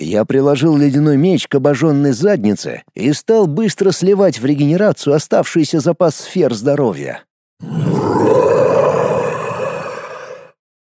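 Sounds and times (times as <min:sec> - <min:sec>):
speech: 0:00.0 - 0:08.5
wounded dragon roaring as it thrashes on the ground: 0:07.6 - 0:10.6.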